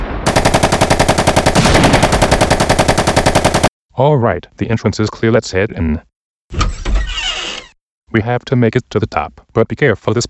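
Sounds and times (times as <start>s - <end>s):
rapid sniper gunfire in a video game: 0.2s - 3.7s
speech: 4.0s - 6.7s, 8.2s - 10.2s.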